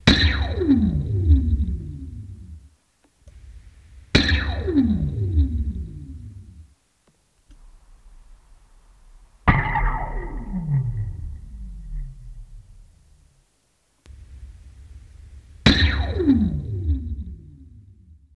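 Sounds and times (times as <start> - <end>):
laser shot: 0.0 - 2.0, 4.2 - 6.2, 9.4 - 13.3, 15.6 - 17.3.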